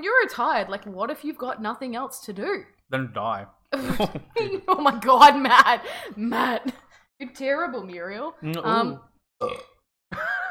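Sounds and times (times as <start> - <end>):
speech: 0.0 - 10.3
person burping after drinking vodka iced tea: 8.4 - 9.9.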